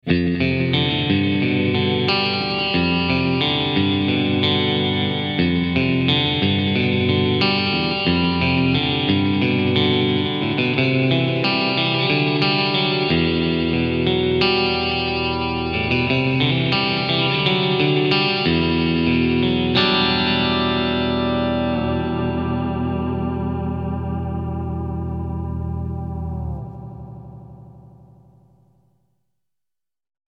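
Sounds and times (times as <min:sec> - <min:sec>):
clean guitar with delay repeats through effects pedals: 0:00.0 - 0:29.0.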